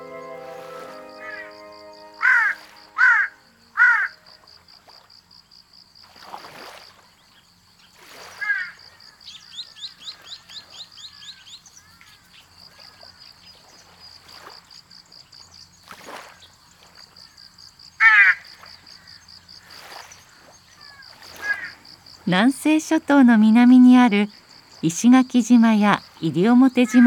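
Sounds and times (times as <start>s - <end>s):
Ryukyu large-billed crow cawing: 2.2s - 4.2s, 18.0s - 18.4s, 21.4s - 21.8s
speech: 22.3s - 27.0s.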